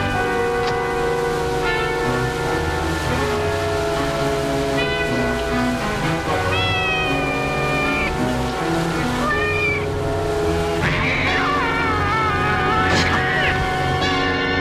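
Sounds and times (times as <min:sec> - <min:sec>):
dense ringing bell-like tones: 0:00.1 - 0:14.5
cats meowing: 0:06.2 - 0:09.9.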